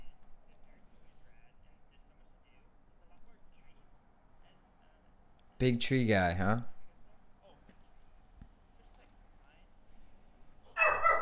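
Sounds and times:
speech: 5.6s - 6.7s
dog barking excitedly: 10.8s - 11.2s
murmuring: 10.8s - 11.2s.

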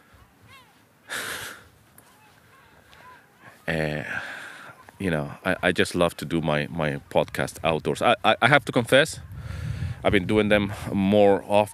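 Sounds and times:
quiet outdoor ambience: 0.0s - 11.7s
seagulls squawking overhead: 2.0s - 5.4s
speech: 3.7s - 4.3s, 5.0s - 11.7s.

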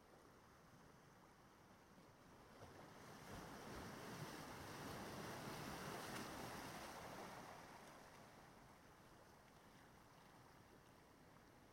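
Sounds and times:
wind: 0.0s - 11.7s
ocean surf washing onto a shore: 2.5s - 9.3s.

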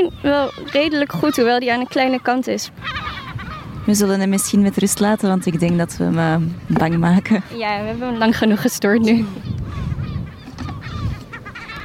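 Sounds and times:
speech: 0.0s - 3.1s, 3.9s - 9.5s
stressed parent bird calling in harsh agitated honking cries: 0.0s - 8.6s, 9.2s - 11.8s.

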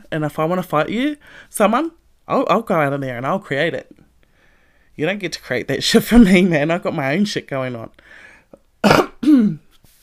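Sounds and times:
speech: 0.1s - 4.0s, 5.0s - 8.2s, 8.8s - 9.6s
person coughing harshly: 8.8s - 9.7s.

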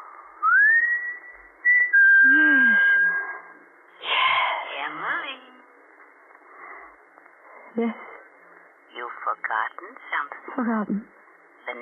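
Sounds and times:
man whistling a signal: 0.4s - 3.4s
indistinct voices: 2.2s - 11.8s
speech: 7.8s - 8.1s, 9.3s - 11.8s.

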